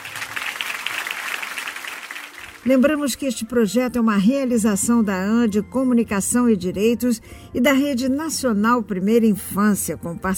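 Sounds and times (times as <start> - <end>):
group applause: 0.0 - 2.8
speech: 2.6 - 10.3.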